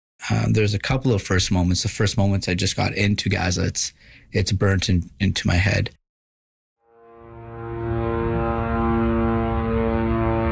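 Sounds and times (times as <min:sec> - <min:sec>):
speech: 0:00.3 - 0:06.0
military drones buzzing overhead in Gaza: 0:07.1 - 0:10.5.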